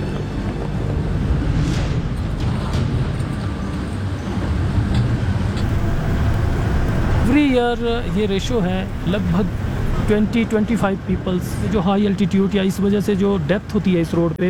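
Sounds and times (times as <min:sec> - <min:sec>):
wind buffeting the microphone: 0:00.0 - 0:11.8
heavily loaded vehicle engine straining uphill at high altitude: 0:04.4 - 0:11.9
speech: 0:07.5 - 0:14.4.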